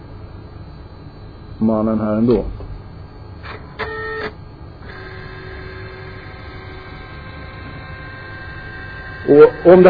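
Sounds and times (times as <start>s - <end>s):
speech: 1.6s - 2.6s, 9.3s - 9.8s
flatbed scanner whirring and clattering during a scan: 3.4s - 9.8s.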